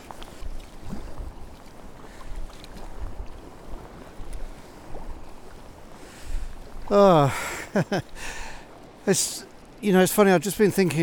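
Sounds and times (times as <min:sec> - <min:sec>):
speech: 0:06.9 - 0:08.4, 0:09.0 - 0:11.0
small waterfall trickling: 0:06.9 - 0:11.0.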